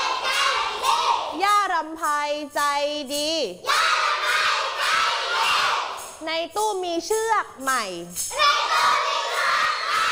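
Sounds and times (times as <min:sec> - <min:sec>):
group of children shouting a phrase in unison: 0:00.0 - 0:01.4, 0:03.7 - 0:06.0, 0:08.3 - 0:10.0
speech: 0:01.8 - 0:04.0, 0:06.2 - 0:09.4.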